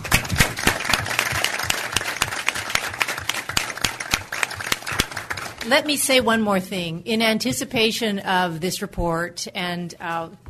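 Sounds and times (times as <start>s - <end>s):
room full of people applauding: 0.0s - 5.8s
speech: 5.7s - 10.4s.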